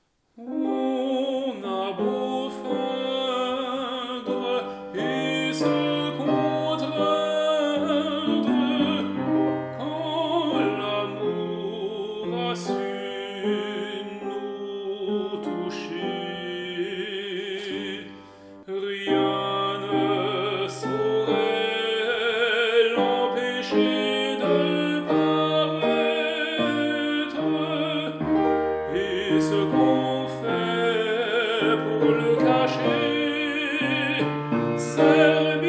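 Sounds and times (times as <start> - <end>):
soprano vocal ornaments: 0.4 - 35.6.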